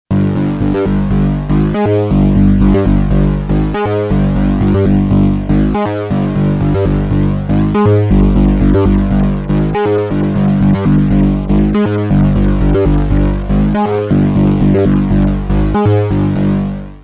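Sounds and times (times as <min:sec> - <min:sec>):
bass with LFO-modulated EQ: 0:00.1 - 0:17.0.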